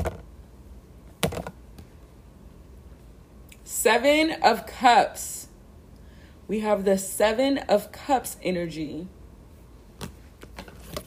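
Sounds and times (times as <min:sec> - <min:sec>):
speech: 0:03.8 - 0:05.4, 0:06.5 - 0:09.2
thick tarot cards being shuffled: 0:10.0 - 0:11.0.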